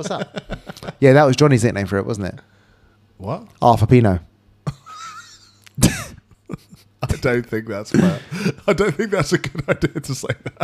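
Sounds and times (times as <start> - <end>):
laughter: 0.0 - 1.1, 8.0 - 10.6
speech: 0.0 - 2.6, 3.2 - 4.3, 5.8 - 10.6
person coughing harshly: 5.8 - 6.8, 7.9 - 8.6.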